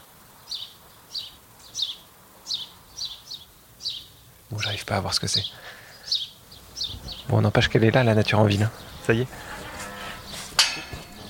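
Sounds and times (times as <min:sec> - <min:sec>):
many birds chirping in fruit trees: 0:00.0 - 0:11.2
speech: 0:04.5 - 0:05.8, 0:07.3 - 0:09.5.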